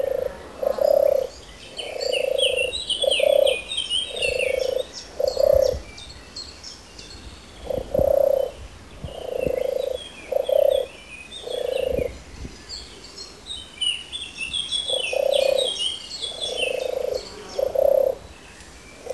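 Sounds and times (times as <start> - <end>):
European turtle dove purring call: 0.0 - 5.8, 7.6 - 12.2, 14.9 - 18.2
small birds chirping and twittering: 0.0 - 19.1.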